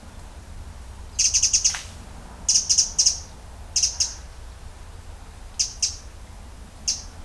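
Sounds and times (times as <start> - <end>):
Eurasian wren Troglodytes troglodytes high ticking calls: 0.2 - 7.2.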